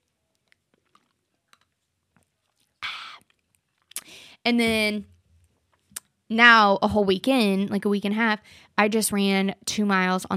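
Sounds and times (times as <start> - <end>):
person taking a drink, sipping and swallowing: 0.3 - 4.1
speech: 4.4 - 5.1, 6.3 - 10.3.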